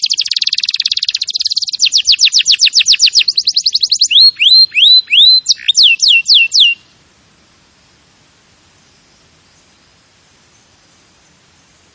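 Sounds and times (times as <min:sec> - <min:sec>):
canary song of trills, upslurred whistles and falling sweeps: 0:00.0 - 0:06.8.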